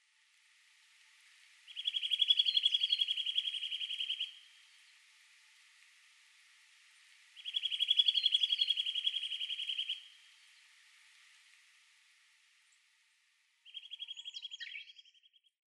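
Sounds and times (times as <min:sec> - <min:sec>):
Eurasian Nuthatch calling: 0:01.7 - 0:04.4, 0:07.4 - 0:10.1, 0:13.7 - 0:15.0.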